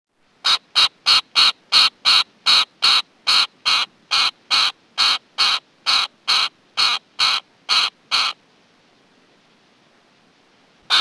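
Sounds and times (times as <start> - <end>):
bird calling harsh nasal notes in North America: 0.4 - 8.4.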